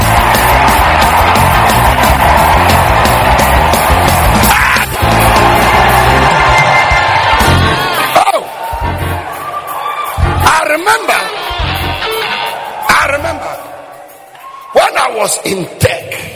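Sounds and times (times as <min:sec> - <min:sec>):
bursts of whoops from a crowd: 0:00.0 - 0:10.3, 0:14.3 - 0:14.8
crowd of people shouting, screaming and yelling: 0:00.0 - 0:16.3
speech: 0:15.4 - 0:15.8.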